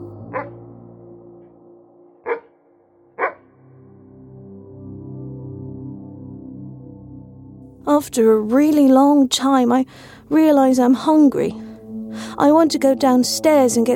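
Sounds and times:
speech: 0:00.4 - 0:00.6, 0:08.0 - 0:13.9
dog barking: 0:02.2 - 0:02.5.

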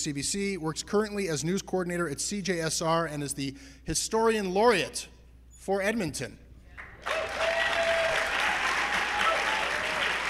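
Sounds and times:
speech: 0:00.0 - 0:06.4
theatre audience applause: 0:06.9 - 0:10.2.

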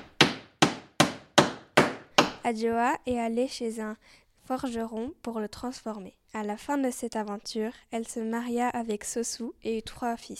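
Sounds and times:
hammer striking a nail: 0:00.0 - 0:02.4
speech: 0:02.4 - 0:10.3.

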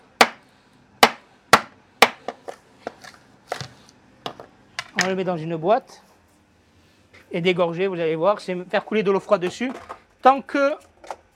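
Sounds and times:
knife chopping red mullet fish bones on a board: 0:00.2 - 0:00.4, 0:01.0 - 0:03.7
speech: 0:05.0 - 0:06.1, 0:07.3 - 0:10.9.

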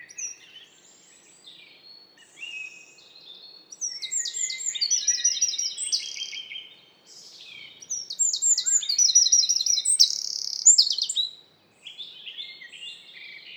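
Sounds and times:
faint background bird chirps: 0:00.0 - 0:13.5
Eurasian Wren trilling song in forest: 0:03.8 - 0:06.5, 0:07.2 - 0:11.4.

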